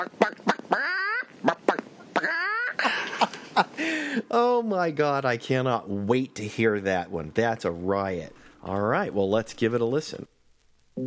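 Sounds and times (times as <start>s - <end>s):
speech: 0.0s - 1.6s, 3.6s - 10.3s
voice imitating a steel guitar made to sound like a chicken: 0.0s - 2.8s.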